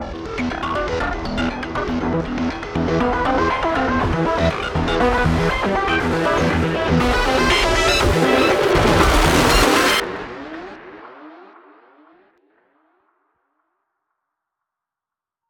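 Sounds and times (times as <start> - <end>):
countdown music: 0.0 - 11.5.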